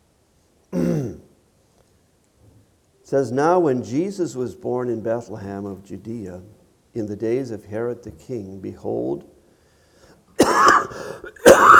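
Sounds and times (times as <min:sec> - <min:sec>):
harsh raspy coughs from a person with a weeks-long cough: 0:00.8 - 0:01.3, 0:10.4 - 0:11.7
speech: 0:03.1 - 0:09.3.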